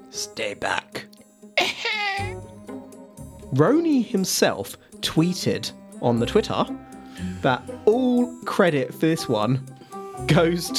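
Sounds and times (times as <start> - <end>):
speech: 0.1 - 1.1, 3.5 - 10.7
person coughing harshly: 1.6 - 2.4
raspy voiced groan: 5.7 - 8.2.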